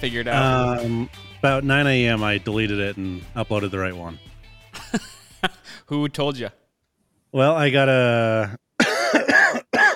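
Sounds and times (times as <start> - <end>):
speech: 0.0 - 4.3, 4.9 - 6.6, 7.3 - 9.8
person coughing harshly: 8.8 - 9.9.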